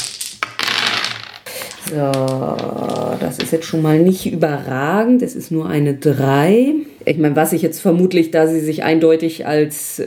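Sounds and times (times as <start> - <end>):
dice rolled across a hard tabletop in a role-playing game: 0.0 - 3.8
speech: 1.9 - 10.0.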